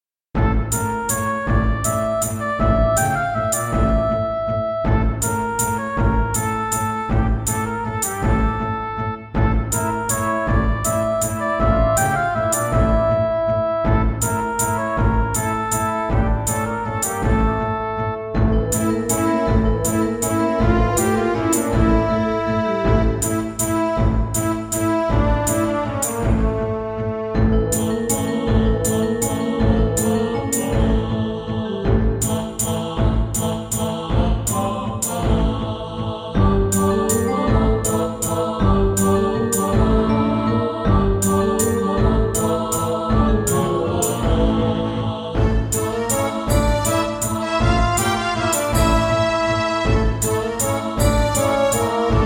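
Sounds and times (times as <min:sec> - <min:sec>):
Yamaha MU500 synthesizer module music in GS mode: 0:00.4 - 0:52.2.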